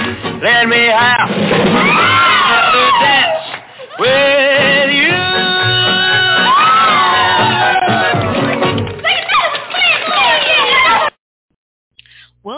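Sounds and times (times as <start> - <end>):
speech: 0.4 - 2.0
large audience screaming and cheering at a singer's performance: 1.6 - 4.2, 5.1 - 11.1.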